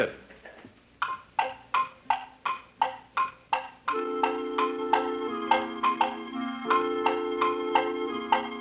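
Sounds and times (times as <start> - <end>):
speech: 0.0 - 0.2
clock ticking: 1.0 - 8.5
sustained musical chords: 3.9 - 8.5.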